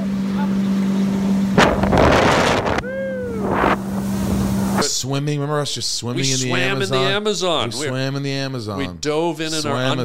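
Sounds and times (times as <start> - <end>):
motorboat engine droning on the Amazon River: 0.0 - 8.1
wind buffeting the microphone in loud gusts: 1.6 - 4.7
water rushing: 1.6 - 4.9
speech: 5.1 - 10.0.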